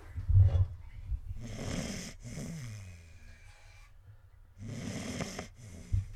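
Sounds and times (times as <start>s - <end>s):
sleeping dog snoring: 1.3s - 4.0s, 4.6s - 6.1s.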